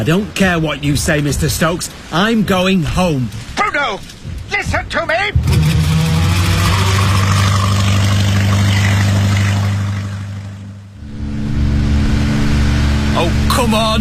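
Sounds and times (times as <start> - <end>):
speech: 0.0 - 5.8, 13.2 - 14.0
boat engine running: 5.3 - 14.0.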